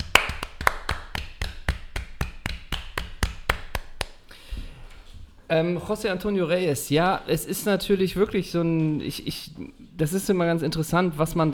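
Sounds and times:
hands clapping as a tribute: 0.0 - 4.2
speech: 5.5 - 11.5.

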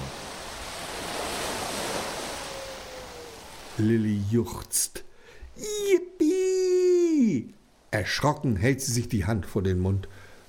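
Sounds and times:
ship cutting through ocean waves with rushing water and spray: 0.0 - 4.3
speech: 3.8 - 5.0, 5.6 - 5.9, 7.3 - 10.2.

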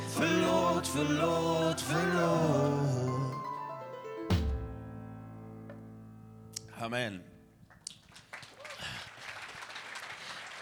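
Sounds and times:
speech: 0.2 - 3.2, 6.8 - 7.3
small group clapping: 7.6 - 10.6.

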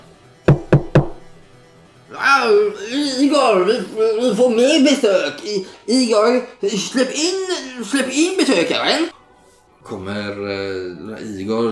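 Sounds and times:
sharp knocks on a door: 0.5 - 1.4
speech: 2.4 - 9.2, 9.8 - 11.7.

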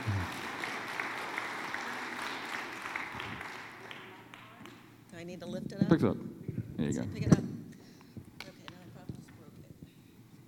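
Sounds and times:
audience at a church gathering clapping: 0.0 - 4.9
speech: 5.2 - 7.4.

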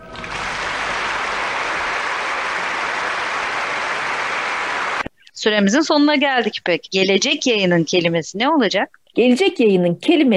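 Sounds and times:
enthusiastic crowd applause: 0.0 - 5.1
speech: 5.4 - 10.3.

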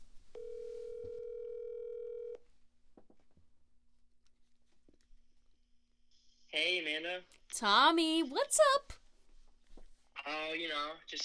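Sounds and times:
telephone dial tone while placing a call: 0.4 - 2.4
soft handling noise: 2.4 - 5.6, 9.0 - 10.2
speech: 6.6 - 9.0, 10.2 - 11.2.

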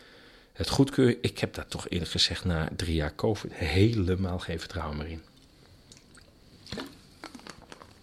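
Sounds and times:
speech: 0.6 - 5.3
person sipping a drink with wet mouth noises and a gulp: 5.4 - 8.0.

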